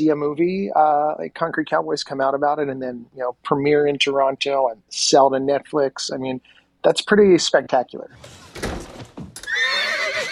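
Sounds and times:
speech: 0:00.0 - 0:08.8
thumps: 0:08.2 - 0:09.5
horse neighing: 0:09.4 - 0:10.2.

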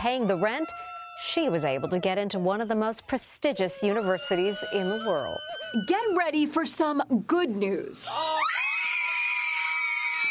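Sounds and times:
sustained high-pitched scream of excitement: 0:00.0 - 0:06.5, 0:08.1 - 0:10.3
speech: 0:00.0 - 0:08.6.

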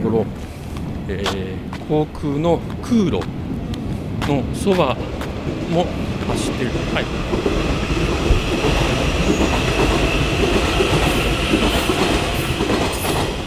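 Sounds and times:
local commuter train rolling along the rails near Fukuoka Airport: 0:00.0 - 0:13.4
speech: 0:00.1 - 0:03.4, 0:04.3 - 0:08.1
faint rhythmic clatter of train wheels: 0:02.6 - 0:13.4.

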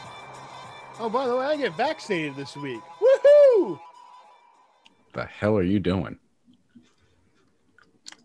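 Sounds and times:
speech: 0:01.0 - 0:03.0, 0:03.6 - 0:03.9, 0:05.2 - 0:06.2
chewing gum: 0:06.5 - 0:08.2.

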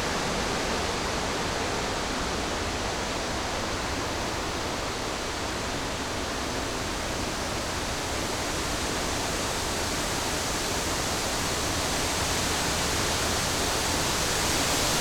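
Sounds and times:
strong wind blowing through a forest: 0:00.0 - 0:15.0.

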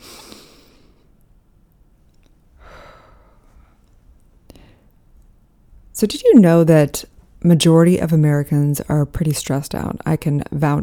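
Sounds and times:
deep breath in through the nose and out through the mouth: 0:00.0 - 0:01.2, 0:02.6 - 0:03.9, 0:04.5 - 0:05.0
speech: 0:06.0 - 0:10.8.

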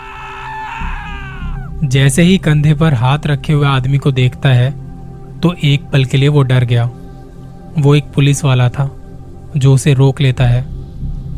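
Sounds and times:
man screaming in fright on a deserted road in heavy rain: 0:00.0 - 0:01.8
speech: 0:01.8 - 0:04.8, 0:05.4 - 0:07.0, 0:07.8 - 0:10.7.

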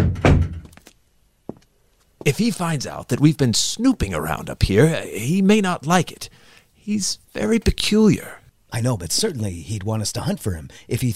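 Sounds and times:
upstairs room door in a house swinging shut: 0:00.0 - 0:00.8
speech: 0:02.3 - 0:11.1.

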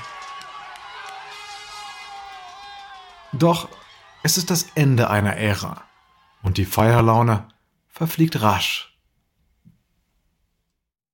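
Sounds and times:
overlapping shouts and whoops: 0:00.0 - 0:06.5
large crowd cheering outdoors: 0:00.0 - 0:08.6
speech: 0:03.3 - 0:08.9.

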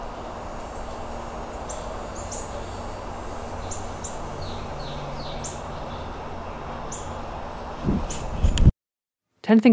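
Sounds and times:
woodpecker, Carolina wrens and cardinal chirping: 0:00.0 - 0:08.4
outdoor hiss: 0:00.0 - 0:08.7
speech: 0:09.5 - 0:09.7.

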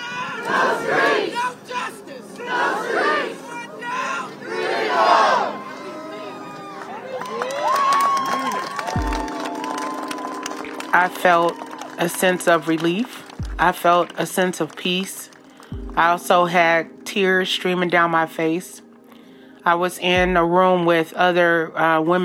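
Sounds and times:
protesters chanting: 0:00.0 - 0:06.8
crowd of protesters screaming and shouting excitedly: 0:00.0 - 0:13.4
speech: 0:11.0 - 0:15.3, 0:16.0 - 0:18.8, 0:19.6 - 0:22.2.

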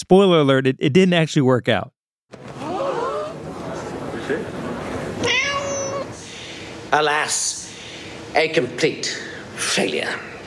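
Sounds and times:
speech: 0:00.0 - 0:02.5, 0:06.9 - 0:07.6, 0:08.4 - 0:10.3
cat meowing: 0:05.0 - 0:06.2.

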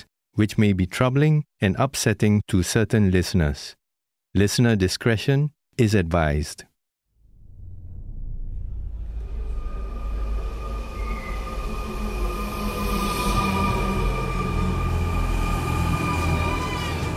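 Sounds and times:
speech: 0:00.0 - 0:03.8, 0:04.4 - 0:06.7
subway train rolling along its tracks: 0:09.4 - 0:17.1.

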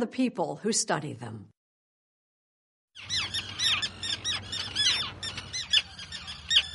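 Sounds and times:
speech: 0:00.0 - 0:01.6
chorus of terns squawking and shrieking: 0:03.0 - 0:06.7.

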